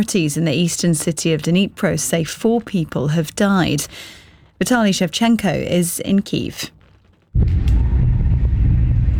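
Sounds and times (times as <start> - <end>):
speech: 0.0 - 6.8
loud blast with heavy deep rumbling: 7.3 - 9.1.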